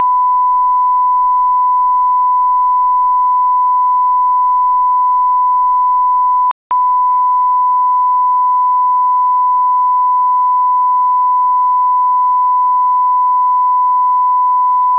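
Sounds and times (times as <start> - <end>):
1000 Hz calibration tone at 94 dB: 0.0 - 14.9.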